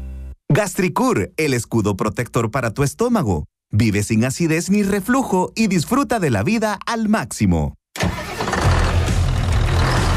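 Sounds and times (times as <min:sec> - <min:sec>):
speech: 0:00.6 - 0:08.1
heavy diesel tractor engine starting and rumbling: 0:08.0 - 0:10.1.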